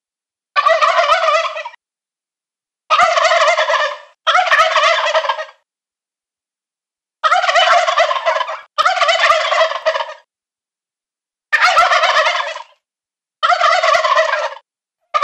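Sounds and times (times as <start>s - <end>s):
male turkeys gobbling: 0.6s - 1.8s, 2.9s - 5.6s, 7.2s - 10.3s, 11.6s - 12.8s, 13.4s - 15.2s.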